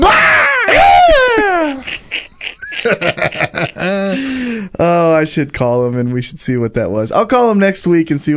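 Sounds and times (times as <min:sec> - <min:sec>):
man roaring scream imitating a wrestler's bellow: 0:00.0 - 0:01.8
laughter: 0:01.1 - 0:04.5
speech: 0:02.9 - 0:08.3.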